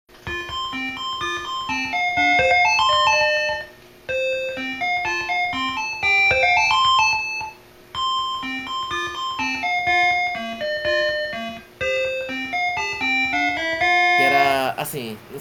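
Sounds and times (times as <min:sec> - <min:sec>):
retro video game chiptune-style melody of tinkling synth notes: 0:00.2 - 0:14.8.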